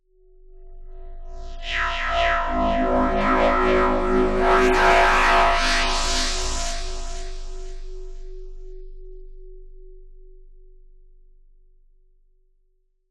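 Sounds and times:
dark delayed filter-modulated metallic FM synth sweep: 0:01.0 - 0:08.6.

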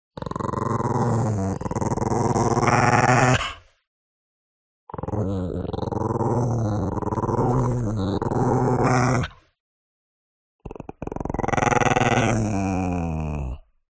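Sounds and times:
Chihuahua growling: 0:00.2 - 0:03.6, 0:04.9 - 0:09.4, 0:10.6 - 0:13.7.

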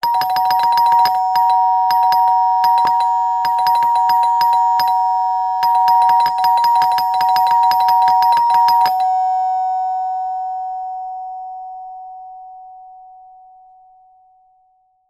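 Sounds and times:
household door bell ding dong with impatient fast presses: 0:00.0 - 0:10.0.

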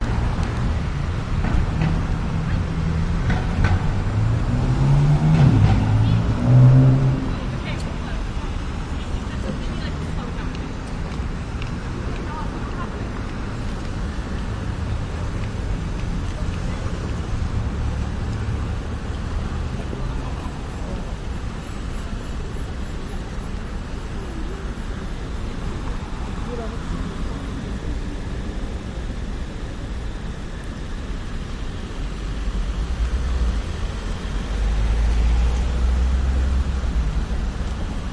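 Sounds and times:
buses: 0:00.0 - 0:38.1
cars: 0:00.0 - 0:38.1
night traffic rumbling with cars and buses: 0:00.0 - 0:38.1.

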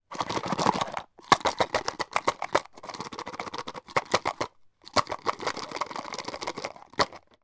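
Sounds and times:
ice cubes shaken in a cup with no liquid: 0:00.1 - 0:07.4.

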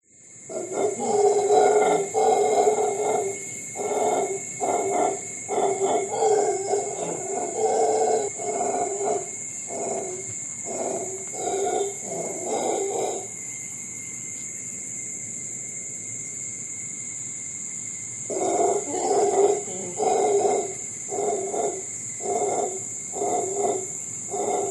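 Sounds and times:
insects in Costa Rica: 0:00.0 - 0:24.7
howler monkeys calling in Costa Rica: 0:00.5 - 0:13.4, 0:18.2 - 0:24.7.

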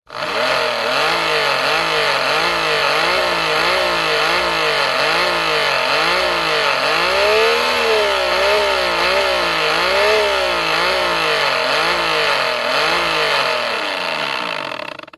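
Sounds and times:
powerful handheld electric industrial pump motor revving close: 0:00.1 - 0:15.1.

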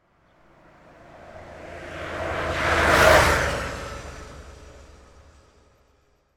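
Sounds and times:
motorcycle passing at speed: 0:00.6 - 0:04.9.

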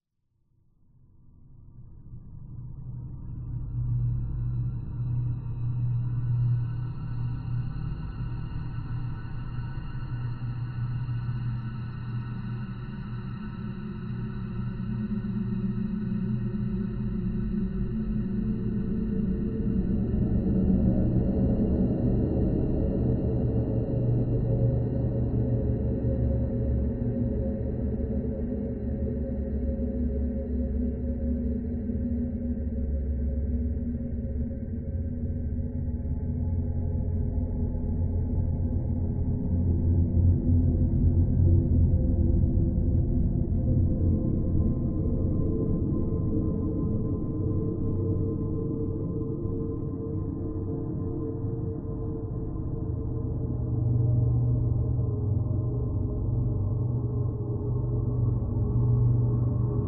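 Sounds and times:
dark horror atmosphere with LFE droning: 0:01.8 - 0:59.8.

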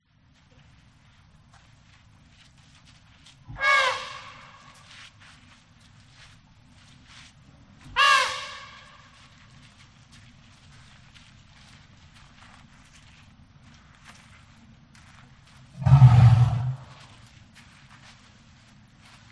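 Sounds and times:
elephant: 0:15.8 - 0:17.2.

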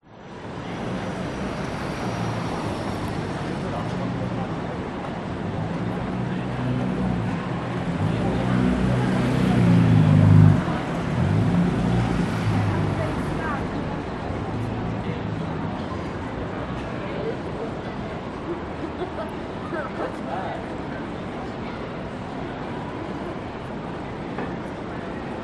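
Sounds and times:
traffic passing close on George Street in Sydney at night: 0:00.2 - 0:25.4
people on a city street at night in Sydney: 0:00.5 - 0:25.4.

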